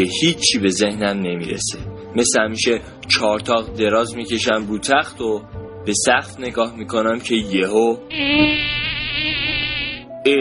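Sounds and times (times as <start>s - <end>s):
speech: 0.0s - 9.5s
mosquito's thin high-pitched whine: 8.1s - 10.3s.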